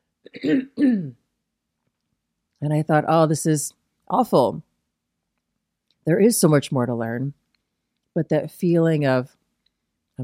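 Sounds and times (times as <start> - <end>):
person clearing throat: 0.3 - 1.2
speech: 0.4 - 1.2, 2.6 - 4.7, 6.0 - 7.4, 8.2 - 9.4.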